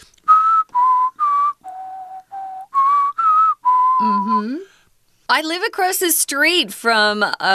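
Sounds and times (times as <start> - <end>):
person whistling school bell chime melody: 0.3 - 4.7
speech: 5.3 - 7.5.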